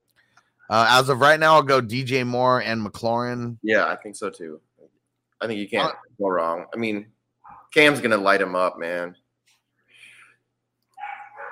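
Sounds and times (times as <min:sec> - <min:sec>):
speech: 0:00.7 - 0:04.7, 0:05.4 - 0:09.2
dogs barking in short yappy bursts: 0:11.0 - 0:11.5.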